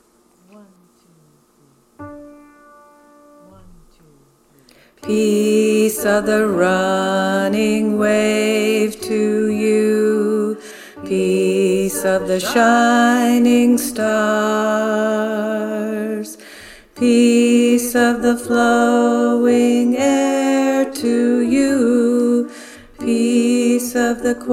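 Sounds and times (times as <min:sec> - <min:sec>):
tenor men choir singing: 0:05.1 - 0:16.3, 0:17.0 - 0:24.5.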